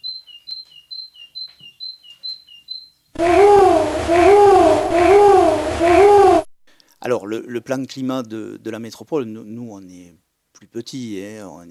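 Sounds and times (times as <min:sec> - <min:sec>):
great tit singing: 0:00.0 - 0:05.6
loud continuous wavering sound: 0:03.2 - 0:06.5
speech: 0:07.1 - 0:11.7.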